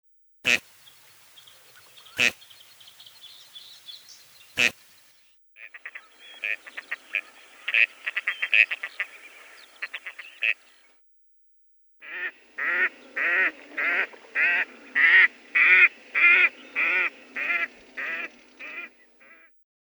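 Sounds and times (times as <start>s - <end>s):
gadwall Anas strepera: 0.5s - 3.1s, 4.5s - 4.9s, 5.6s - 10.8s, 12.0s - 19.5s.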